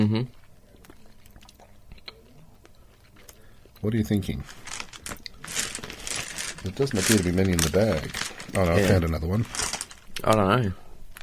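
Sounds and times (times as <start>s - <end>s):
yellow hard-shelled lolly being chewed: 0.3s - 3.7s
speech: 3.8s - 4.7s, 6.6s - 9.6s, 10.2s - 10.8s.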